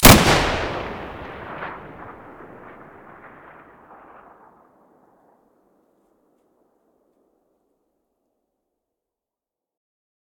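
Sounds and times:
SV98 rifle muzzle blast: 0:00.0 - 0:04.8.

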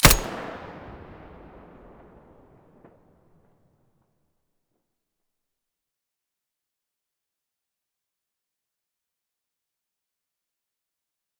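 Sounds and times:
weapon muzzle blast: 0:00.0 - 0:01.2.

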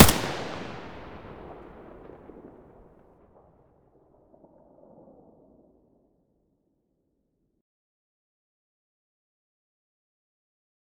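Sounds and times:
AK-74U rifle gunshot: 0:00.0 - 0:02.5.

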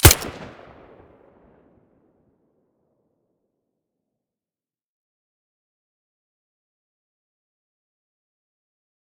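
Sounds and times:
silenced FiveSeven pistol shot: 0:00.0 - 0:00.5.

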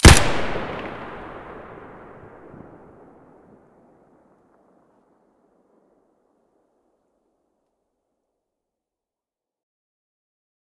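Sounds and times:
SKS rifle muzzle blast: 0:00.0 - 0:03.5.

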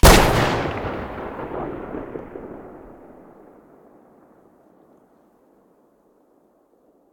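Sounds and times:
stereo gauss weapon shot: 0:00.0 - 0:02.4.

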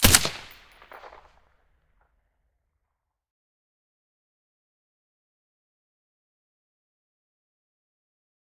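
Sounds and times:
SCAR rifle shot with silencer: 0:00.0 - 0:01.3.

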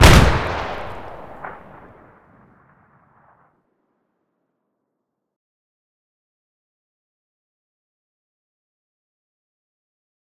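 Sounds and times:
M209 grenade boom: 0:00.0 - 0:03.4.

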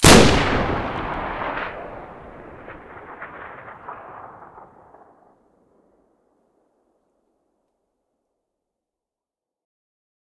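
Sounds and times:
AA-12 shotgun muzzle blast: 0:00.0 - 0:05.1.

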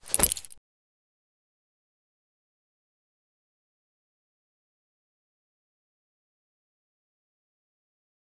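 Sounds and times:
grenade being thrown: 0:00.0 - 0:00.6.

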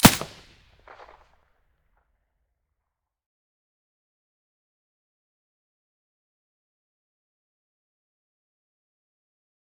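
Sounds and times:
gunshot through a weapon silencer: 0:00.0 - 0:01.1.

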